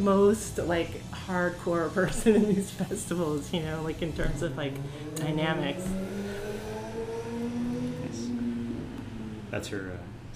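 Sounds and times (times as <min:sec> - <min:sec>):
speech: 0:00.0 - 0:06.2, 0:09.5 - 0:10.3
laughter: 0:02.0 - 0:03.0
motorcycle driving by: 0:04.0 - 0:10.3.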